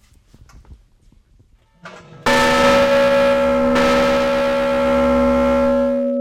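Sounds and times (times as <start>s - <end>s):
large river boat bell struck with a loud clang: 2.3s - 6.1s.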